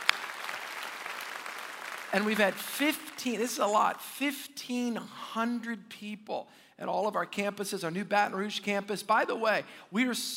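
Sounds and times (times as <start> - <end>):
church audience applauding with hand claps: 0.0 - 3.3
speech: 2.1 - 10.3.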